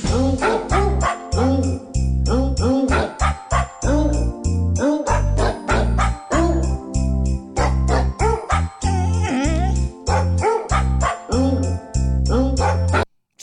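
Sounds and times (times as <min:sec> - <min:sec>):
bright jingly chiming backing music: 0:00.1 - 0:12.4
dog barks pitched and sequenced into a novelty song: 0:00.4 - 0:01.8, 0:02.6 - 0:03.9, 0:04.8 - 0:06.7, 0:07.6 - 0:09.2, 0:09.9 - 0:11.7, 0:12.5 - 0:13.0.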